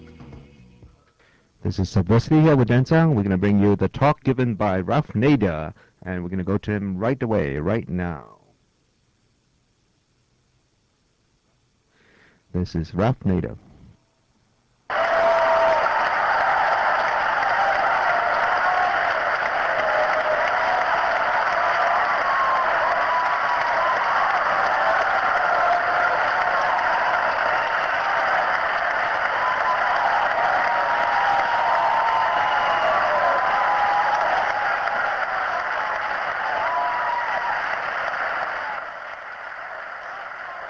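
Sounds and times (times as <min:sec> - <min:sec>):
speech: 0:01.6 - 0:08.4, 0:12.5 - 0:13.6
large crowd cheering and applauding at Chapman University: 0:14.9 - 0:40.6.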